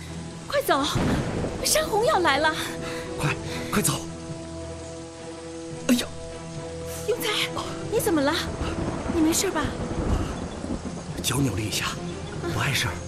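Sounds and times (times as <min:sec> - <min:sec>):
thunder rumbling before rain: 0:00.4 - 0:04.1, 0:06.8 - 0:13.0.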